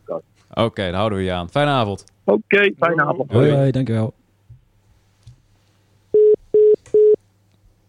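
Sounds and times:
low hum: 0:00.0 - 0:07.8
speech: 0:00.1 - 0:04.2
telephone busy tone beeps after call ends: 0:06.2 - 0:07.2.

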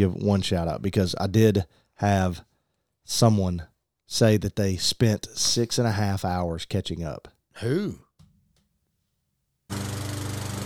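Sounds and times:
speech: 0:00.0 - 0:02.5, 0:03.1 - 0:08.0, 0:09.7 - 0:09.9
lawn mower engine roaring: 0:09.7 - 0:10.6.

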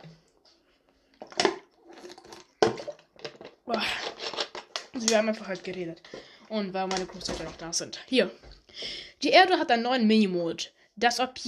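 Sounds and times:
speech: 0:01.2 - 0:01.6, 0:03.7 - 0:04.0, 0:05.0 - 0:11.4
swallowing gulps of water: 0:01.2 - 0:03.1
softer slurping of water: 0:01.6 - 0:03.0.

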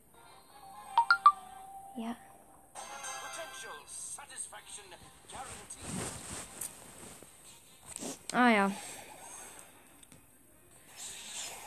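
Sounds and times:
mobile phone ringing with bright electronic tones: 0:01.0 - 0:01.6
speech: 0:08.3 - 0:08.9.

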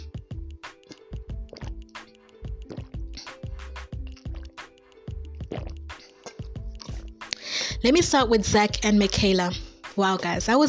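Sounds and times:
person gulping and swallowing water: 0:00.7 - 0:07.4
speech: 0:07.8 - 0:10.6.

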